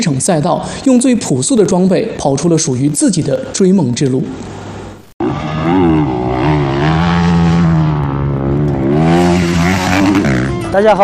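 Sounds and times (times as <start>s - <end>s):
speech: 0.0s - 4.7s, 10.8s - 11.0s
rally motorcycle engine revving in the China Tarim rally in Xinjiang: 5.2s - 10.8s.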